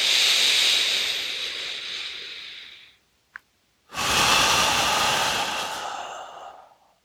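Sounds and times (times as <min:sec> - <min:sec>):
strong exhales with the belly pulled in during breathwork: 0:00.0 - 0:03.0, 0:03.9 - 0:07.0.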